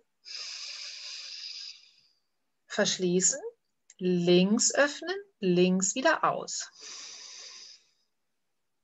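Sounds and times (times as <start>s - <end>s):
nasal inhale through one nostril: 0.2s - 2.2s, 6.7s - 8.1s
speech: 2.8s - 7.0s.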